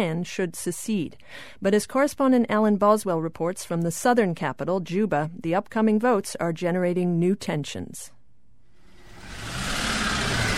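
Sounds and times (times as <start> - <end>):
speech: 0.0 - 8.2
four-wheel drive vehicles and motorbikes driving on potholed road: 9.0 - 10.5.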